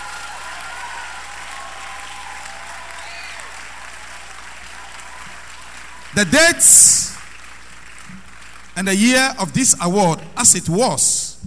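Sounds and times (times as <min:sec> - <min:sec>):
audience applause: 0:00.0 - 0:09.4
speech: 0:06.2 - 0:07.1, 0:08.8 - 0:11.4.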